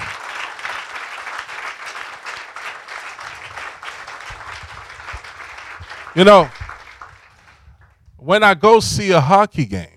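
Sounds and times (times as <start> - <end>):
audience applauding: 0.0 - 8.0
speech: 6.2 - 6.6, 8.3 - 9.9.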